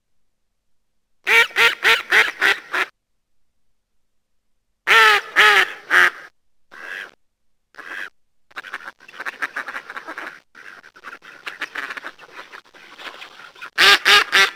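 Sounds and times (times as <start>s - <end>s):
mallard quacking: 1.3s - 2.9s, 4.9s - 7.2s, 7.8s - 14.5s.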